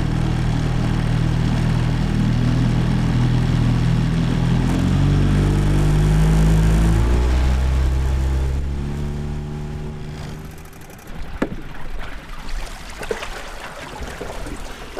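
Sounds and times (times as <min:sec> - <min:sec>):
motorboat engine droning while crossing a river: 0:00.0 - 0:14.9
hollow knocks and clunks: 0:10.1 - 0:12.1.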